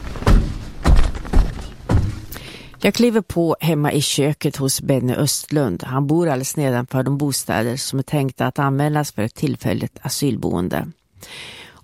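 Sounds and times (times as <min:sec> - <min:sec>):
knocking on a door: 0:00.1 - 0:02.4
speech: 0:02.8 - 0:11.8.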